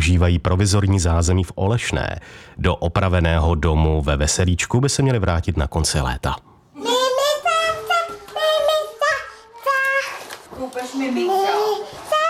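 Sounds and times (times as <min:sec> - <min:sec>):
speech: 0:00.1 - 0:06.5, 0:10.8 - 0:12.1
young child making sing-song vocal sounds in a playroom: 0:06.7 - 0:12.2.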